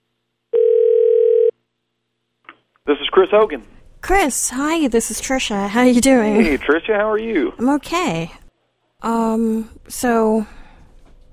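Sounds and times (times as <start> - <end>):
telephone ring tone as a phone call connects: 0.5 - 1.6
speech: 2.9 - 8.4, 9.0 - 10.6.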